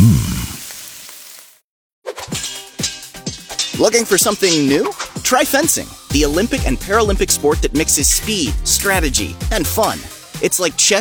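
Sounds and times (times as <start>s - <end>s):
Spam pork sizzling as it fries: 0.0s - 1.6s
speech: 3.8s - 11.0s.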